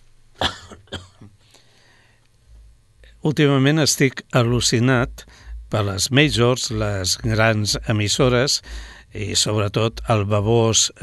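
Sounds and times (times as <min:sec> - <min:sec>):
sharp coughs: 0:00.4 - 0:01.3
soft throat-clearing rasp: 0:00.4 - 0:01.4
speech: 0:03.2 - 0:11.0.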